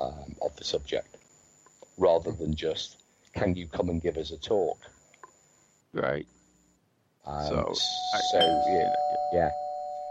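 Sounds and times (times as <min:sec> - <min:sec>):
speech: 0:00.6 - 0:01.1, 0:02.0 - 0:04.9, 0:06.0 - 0:06.4, 0:07.2 - 0:09.6
bell ringing: 0:07.8 - 0:10.0.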